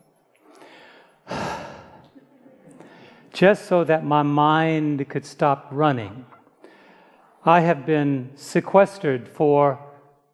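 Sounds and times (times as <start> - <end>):
deep breath drawn slowly and released: 0.4 - 3.3, 6.6 - 7.4
speech: 3.4 - 6.4, 7.4 - 9.8.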